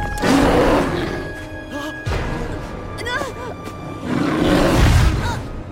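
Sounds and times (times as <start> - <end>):
female polar bear roaring and growling while rearing onto her hind legs: 0.2 - 1.3, 3.9 - 5.2.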